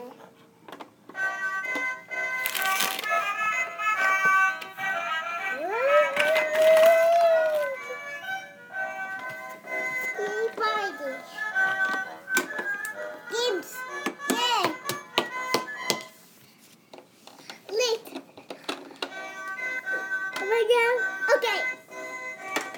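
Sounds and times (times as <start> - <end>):
toy pirate ship song: 1.1 - 16.1, 19.0 - 22.7
child babbling while playing at a house: 5.5 - 8.0.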